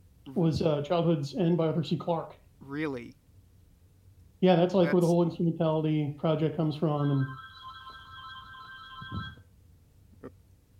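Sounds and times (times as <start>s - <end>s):
speech: 0.3s - 3.2s, 4.4s - 7.4s
phone ringing with a steady electronic tone: 7.0s - 9.4s.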